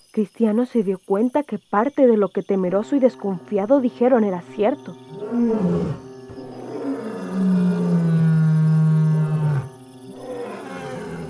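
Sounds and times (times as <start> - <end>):
speech: 0.1 - 6.0
lions roaring: 5.1 - 11.2.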